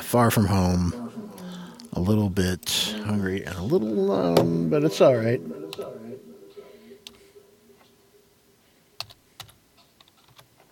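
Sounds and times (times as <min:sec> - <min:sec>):
speech: 0:00.1 - 0:01.0, 0:02.0 - 0:05.9
slow irregular typing on a keyboard: 0:09.0 - 0:10.6.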